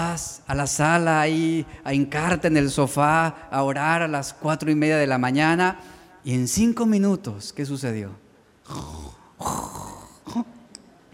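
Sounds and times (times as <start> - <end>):
speech: 0.0 - 9.6
person imitating snoring of someone fallen asleep: 8.6 - 10.6.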